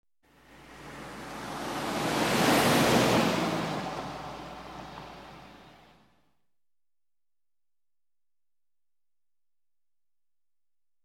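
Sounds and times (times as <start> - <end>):
cars passing by on a highway: 0.3 - 6.2.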